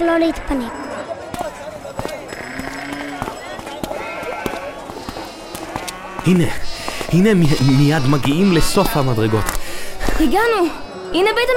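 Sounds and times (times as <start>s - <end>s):
speech: 0.0s - 0.8s, 6.3s - 9.6s, 10.2s - 11.5s
sheep and goats bleating while held by people climbing stairs: 0.0s - 1.0s, 2.1s - 9.7s
scattered knocks: 1.3s - 6.3s
hooves clattering on stairs up to the Temple Mount: 1.3s - 10.6s.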